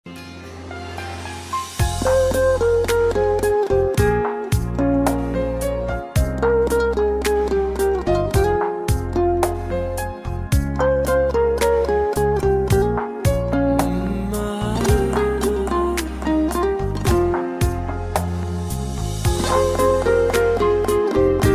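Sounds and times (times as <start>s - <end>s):
dombyra playing a kuy: 1.0s - 21.5s.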